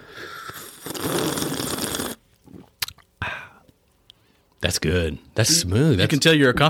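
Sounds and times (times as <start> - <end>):
loud slurp of hot freshly brewed Tanzanian coffee: 0.0 - 2.7
quiet mouth clicks: 0.3 - 4.2
speech: 1.0 - 1.4, 4.6 - 6.6.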